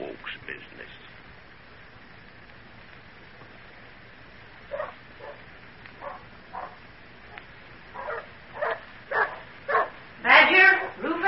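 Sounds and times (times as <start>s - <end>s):
several dogs barking: 4.7s - 10.0s.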